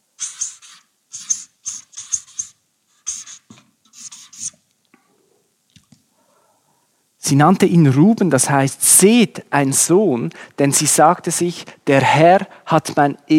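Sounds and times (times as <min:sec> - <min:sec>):
pen scratching out names on paper: 0:00.2 - 0:04.6
speech: 0:07.3 - 0:13.3.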